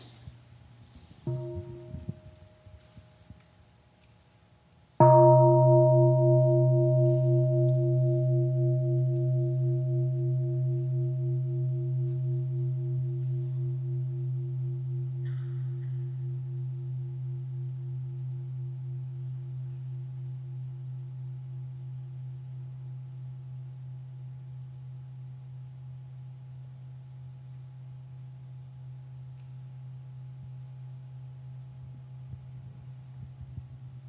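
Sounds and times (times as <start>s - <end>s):
deep resonant meditation bell ringing: 1.3s - 3.3s, 5.0s - 21.0s.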